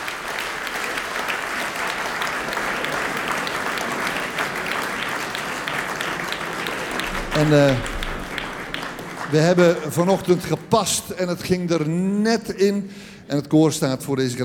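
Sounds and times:
audience applause for a chamber choir: 0:00.0 - 0:11.0
speech: 0:07.4 - 0:08.0, 0:09.3 - 0:14.4.

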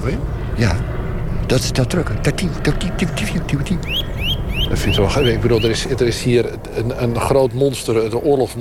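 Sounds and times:
speech: 0:00.0 - 0:04.1, 0:04.7 - 0:08.6
faint low voices murmuring: 0:02.1 - 0:07.2
Eurasian nuthatch calling: 0:03.7 - 0:06.0.

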